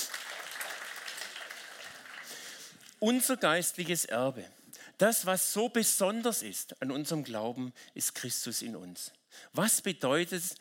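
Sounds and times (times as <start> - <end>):
audience applauding at a church gathering: 0.0 - 3.0
speech: 3.0 - 10.6.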